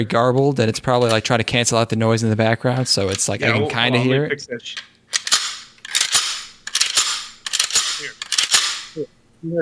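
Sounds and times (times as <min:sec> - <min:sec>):
speech: 0:00.0 - 0:05.3, 0:09.0 - 0:09.5
9mm handgun slide being racked: 0:05.1 - 0:08.9.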